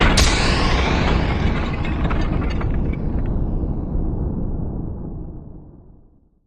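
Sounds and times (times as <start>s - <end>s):
rattle: 0.0s - 3.4s
big impact sweep: 0.0s - 4.3s.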